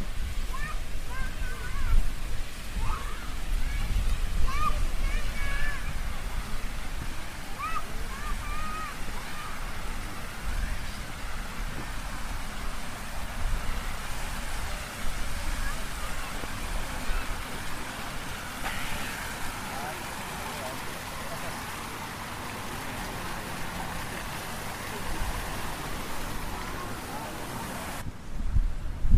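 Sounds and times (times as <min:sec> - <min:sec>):
park fountains splashing: 0:00.0 - 0:28.1
children's voices playing in a park: 0:00.4 - 0:11.0, 0:13.7 - 0:22.0, 0:24.8 - 0:28.0.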